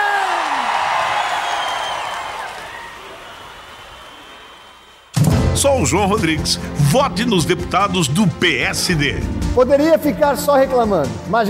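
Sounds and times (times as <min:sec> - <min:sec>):
scattered whoops from a crowd: 0:00.0 - 0:05.0
large audience shouting and cheering: 0:00.0 - 0:07.9
speech: 0:05.6 - 0:11.4.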